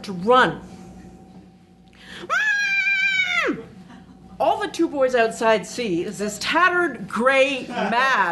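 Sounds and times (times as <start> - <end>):
speech: 0.0 - 0.7, 4.4 - 8.3
person screaming in fright: 2.2 - 3.7.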